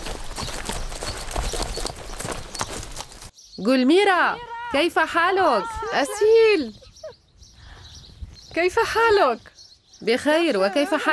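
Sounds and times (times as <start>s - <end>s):
horse hooves clip-clopping at a quick riding pace: 0.0s - 3.3s
rustling outdoor background: 0.0s - 11.1s
speech: 3.6s - 6.8s, 8.6s - 11.1s.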